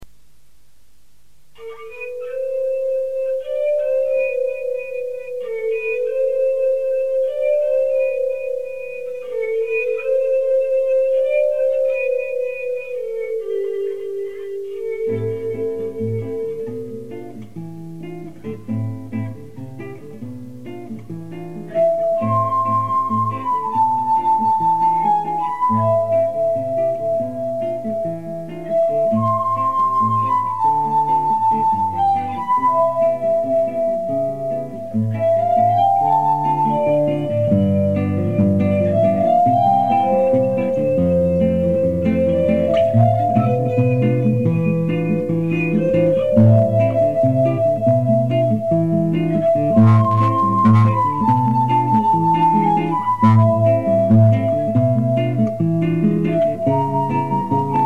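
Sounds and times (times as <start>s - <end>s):
guitar: 0.0s - 57.8s.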